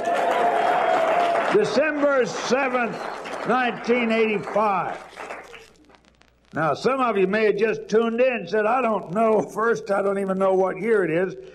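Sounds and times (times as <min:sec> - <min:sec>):
crowd applauding: 0:00.0 - 0:05.8
speech: 0:01.5 - 0:05.2, 0:06.5 - 0:11.5.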